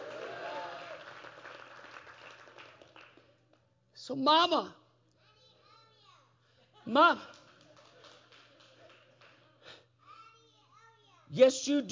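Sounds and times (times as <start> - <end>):
audience clapping hands: 0.0 - 3.7, 7.2 - 9.7
speech: 4.1 - 4.8, 6.9 - 7.4, 11.4 - 11.9.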